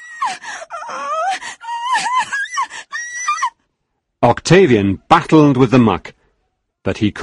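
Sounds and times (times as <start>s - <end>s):
girl crying and wailing: 0.0s - 3.6s
speech: 4.2s - 6.1s, 6.8s - 7.2s.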